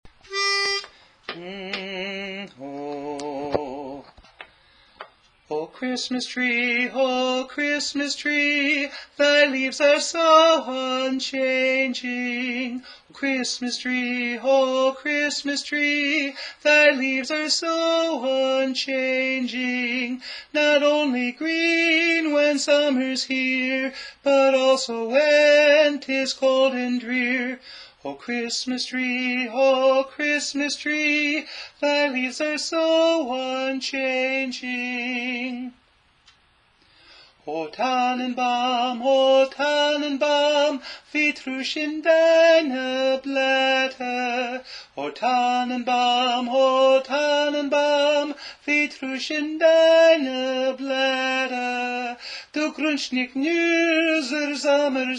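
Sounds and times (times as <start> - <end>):
tenor voice singing a Christmas carol: 0.3 - 4.2, 5.5 - 35.8, 37.4 - 55.1.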